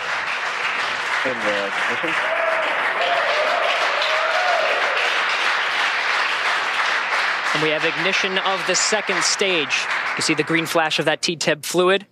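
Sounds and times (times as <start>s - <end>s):
crowd clapping during a rocket launch: 0.0s - 11.4s
speech: 1.2s - 3.5s, 7.5s - 12.1s
short shouts and whoops: 2.1s - 5.1s.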